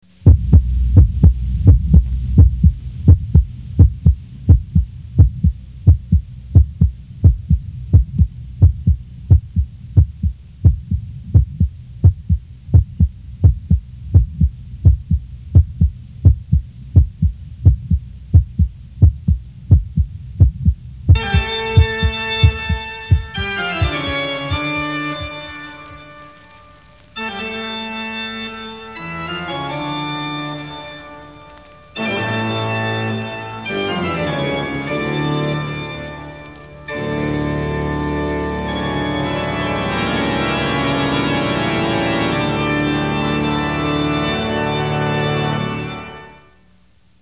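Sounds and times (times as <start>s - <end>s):
heartbeats: 0.0s - 25.5s
organ: 21.2s - 46.6s.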